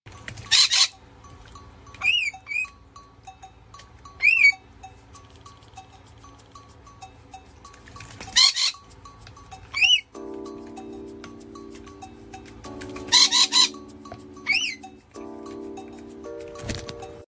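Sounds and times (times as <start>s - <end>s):
rainbow lorikeet calling: 0.5s - 1.0s, 2.0s - 2.7s, 4.2s - 4.6s, 8.4s - 8.8s, 9.7s - 10.2s, 13.0s - 15.0s.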